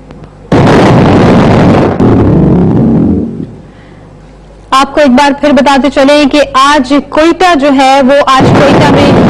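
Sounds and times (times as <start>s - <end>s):
bomb blast in a car in Quetta Pakistan: 0.5s - 4.0s, 8.4s - 9.2s
speech: 4.8s - 9.2s.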